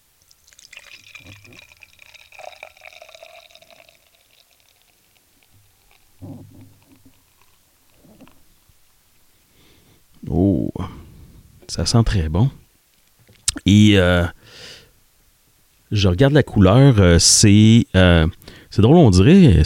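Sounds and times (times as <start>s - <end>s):
fizzy hiss of beer foam: 0.0s - 9.5s
beer pouring from a can into a glass: 0.2s - 8.6s
speech: 1.2s - 1.7s, 11.7s - 12.6s, 13.6s - 14.6s, 15.9s - 19.6s.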